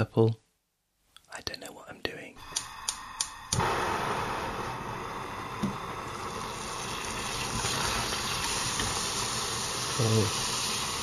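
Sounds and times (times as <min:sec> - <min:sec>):
speech: 0:00.1 - 0:00.4
sharp clicks: 0:02.5 - 0:03.7
butter melting and sizzling in a pan: 0:02.7 - 0:11.0.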